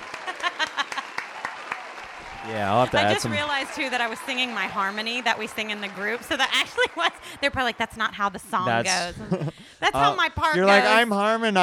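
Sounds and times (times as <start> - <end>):
laughter: 0.0 - 1.2, 2.4 - 4.9, 6.0 - 7.7, 8.6 - 11.1
applause: 0.0 - 7.9
soft steady hiss of crowd noise: 2.0 - 3.8
speech: 2.4 - 11.6.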